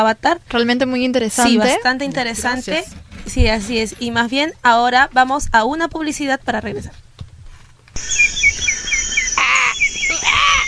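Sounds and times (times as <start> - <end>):
speech: 0.0 - 7.0
quick high bird chirps: 8.0 - 10.6
crow cawing: 8.6 - 10.6.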